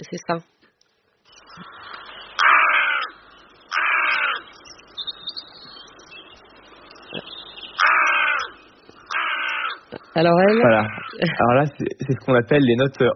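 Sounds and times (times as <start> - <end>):
speech: 0.0 - 0.6, 10.1 - 13.1
chatter of other birds: 1.2 - 13.1
carrion crow cawing: 1.6 - 4.5, 7.8 - 11.2.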